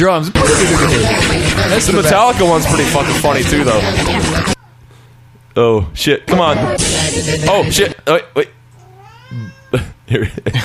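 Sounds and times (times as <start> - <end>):
speech: 0.0 - 4.6, 5.6 - 8.6, 9.3 - 10.6
cat meowing: 8.8 - 9.8.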